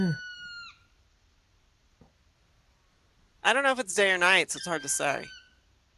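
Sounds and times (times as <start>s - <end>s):
speech: 0.0s - 0.3s, 3.4s - 5.4s
woodpecker call: 0.0s - 0.9s, 4.6s - 5.6s.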